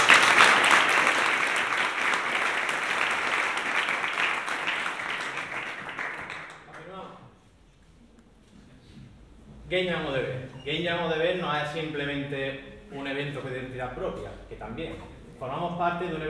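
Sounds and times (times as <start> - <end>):
audience applause at a game jam event: 0.0 - 6.9
speech: 9.7 - 16.2.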